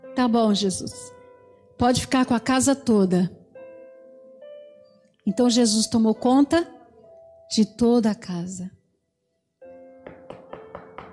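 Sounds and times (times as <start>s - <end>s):
speech: 0.2s - 1.2s, 1.8s - 3.4s, 5.3s - 6.8s, 7.5s - 8.8s
firm knocking on a door: 10.0s - 11.1s.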